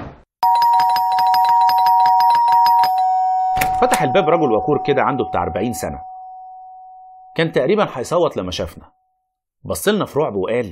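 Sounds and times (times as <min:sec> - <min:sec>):
apartment doorbell held down ringing: 0:00.4 - 0:08.0
speech: 0:03.8 - 0:06.1, 0:07.4 - 0:09.0, 0:09.6 - 0:10.7.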